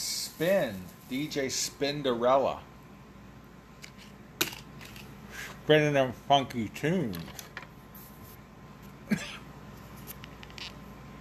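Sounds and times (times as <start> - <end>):
low hum: 0.0 - 11.1
speech: 0.4 - 2.7, 5.7 - 7.4
person smoking a cigar coughing: 9.0 - 9.5.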